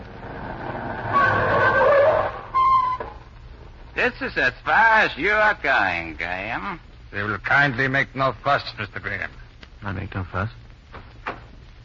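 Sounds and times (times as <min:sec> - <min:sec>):
chauffeur-driven car engine rumbling: 0:00.0 - 0:02.6
car tires squealing in a long skid to a halt: 0:00.2 - 0:03.2
speech: 0:04.0 - 0:10.6.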